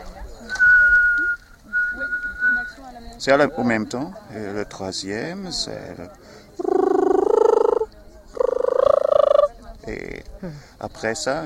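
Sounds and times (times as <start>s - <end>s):
steady sustained whistled tone: 0.5s - 2.8s
speech: 3.2s - 6.4s, 10.4s - 11.4s
lower voice humming or singing: 6.6s - 9.5s.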